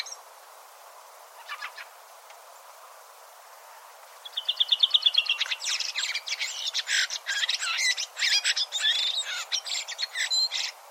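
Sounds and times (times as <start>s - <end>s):
bird giving high-pitched chirps and twittering notes with thin whistles: 4.2s - 10.8s.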